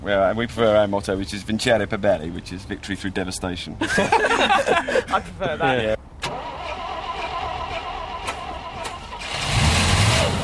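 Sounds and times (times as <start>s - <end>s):
speech: 0.0s - 6.0s
laughter: 3.8s - 6.0s
heavy truck engine cranking, starting and running: 6.2s - 10.4s.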